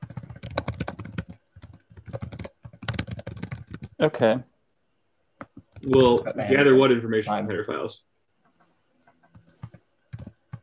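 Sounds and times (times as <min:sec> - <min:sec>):
typing on a computer keyboard: 0:00.0 - 0:04.2, 0:09.2 - 0:10.6
speech: 0:04.0 - 0:04.5, 0:05.8 - 0:08.1.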